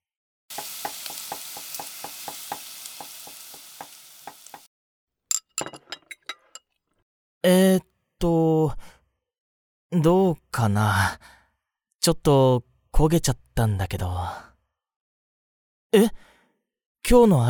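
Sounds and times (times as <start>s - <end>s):
frying sizzle in a pan: 0.5s - 4.7s
utensil clinking on a pan while stirring a meal: 0.5s - 4.7s
speech: 10.0s - 11.4s, 12.0s - 14.5s, 15.9s - 16.3s, 17.0s - 17.4s.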